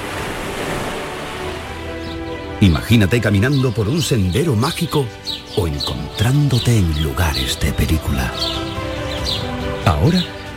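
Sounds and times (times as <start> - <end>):
ocean waves washing on a beach: 0.0 - 1.9
speech: 2.6 - 10.4.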